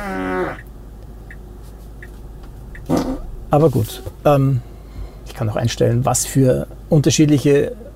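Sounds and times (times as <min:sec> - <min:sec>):
car turn signal ticking: 0:00.6 - 0:03.5
car's buzzy novelty fart sound effect: 0:02.9 - 0:03.2
speech: 0:03.5 - 0:04.7, 0:05.4 - 0:07.8.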